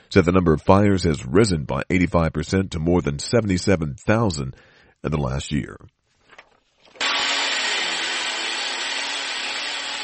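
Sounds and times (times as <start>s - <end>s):
speech: 0.1s - 6.0s
power drill drilling plywood over windows: 7.0s - 10.0s.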